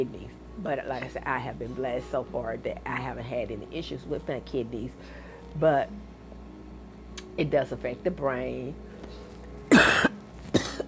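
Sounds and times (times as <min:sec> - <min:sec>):
speech: 0:00.0 - 0:06.1, 0:07.4 - 0:09.2
harsh coughs: 0:09.7 - 0:10.8.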